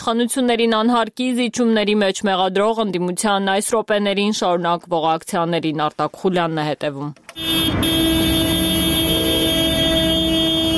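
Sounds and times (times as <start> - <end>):
speech: 0.0 - 8.0
car horns honking in a protest motorcade: 7.3 - 10.7
constant rumble of vehicle noise: 7.4 - 10.7.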